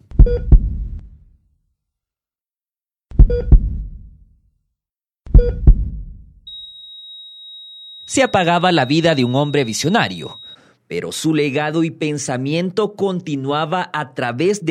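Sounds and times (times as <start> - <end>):
heartbeat sound effect with deep double thumps: 0.1 - 1.2, 3.1 - 4.2, 5.3 - 6.4
speech: 0.2 - 0.6, 8.2 - 14.6
steady high-pitched electronic beep: 6.5 - 10.6.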